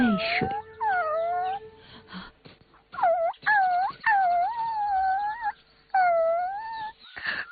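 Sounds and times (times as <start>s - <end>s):
puppy whimpering and whining: 0.0s - 1.7s, 2.9s - 7.2s
speech: 0.2s - 0.6s.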